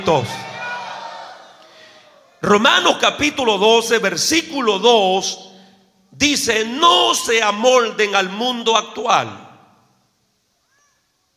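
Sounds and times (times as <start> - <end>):
speech: 0.0 - 0.5, 2.4 - 5.5, 6.1 - 9.4
church audience shouting together: 0.0 - 2.4.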